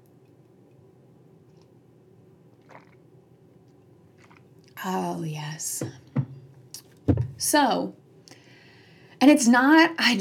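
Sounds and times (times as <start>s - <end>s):
person slurping coffee from a cup: 2.5s - 3.1s, 3.7s - 4.8s
speech: 4.8s - 6.0s, 7.4s - 8.0s, 9.2s - 10.1s.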